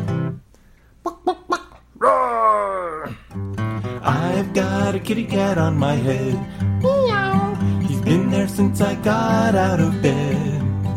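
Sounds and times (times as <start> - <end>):
voice imitating a chicken clucking in a children's song: 1.0 - 3.3, 6.8 - 7.6
person singing: 4.0 - 10.7
speech: 4.4 - 6.9, 8.1 - 10.5.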